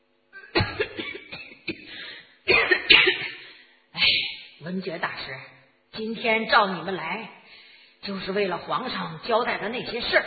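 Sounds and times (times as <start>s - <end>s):
man having a violent coughing fit: 0.4s - 3.6s
speech: 4.7s - 7.4s, 8.0s - 10.2s.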